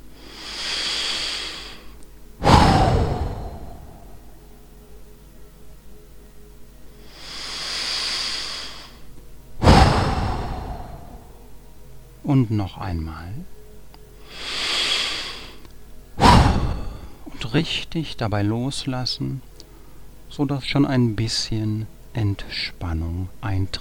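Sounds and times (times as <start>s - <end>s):
soft hissing inhale during a guided relaxation breathing exercise: 0.0s - 4.4s, 7.0s - 11.4s, 14.2s - 15.7s
forceful breathing out during a guided relaxation breathing exercise: 0.1s - 4.2s, 7.0s - 9.0s, 9.6s - 11.4s, 14.2s - 15.6s, 16.2s - 17.3s
speech: 12.3s - 13.6s, 17.5s - 19.5s, 20.4s - 23.7s.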